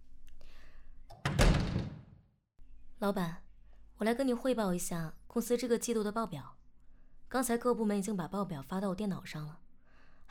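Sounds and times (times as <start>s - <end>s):
door being shut with a solid thud: 1.1s - 2.2s
speech: 3.0s - 3.4s, 4.0s - 6.6s, 7.3s - 9.6s.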